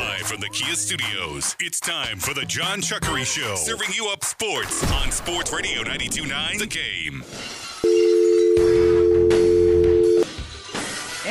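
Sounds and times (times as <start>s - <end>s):
speech: 0.1s - 7.7s
telephone dial tone: 7.8s - 10.2s.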